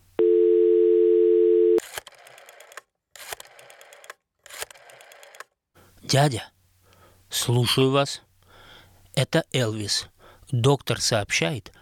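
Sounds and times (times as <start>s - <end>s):
telephone dial tone: 0.2s - 1.8s
speech: 6.1s - 6.5s, 7.3s - 8.3s, 9.2s - 11.8s.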